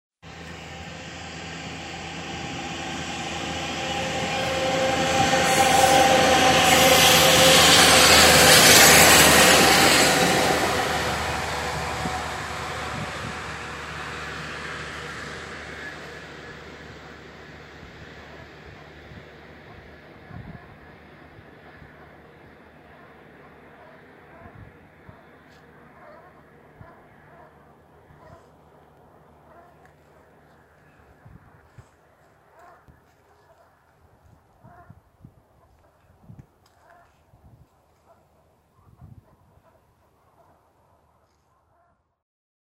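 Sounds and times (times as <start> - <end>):
locomotive at Gypsy Bridge: 0.2 - 37.1
geese at Gypsy Bridge: 34.6 - 35.0.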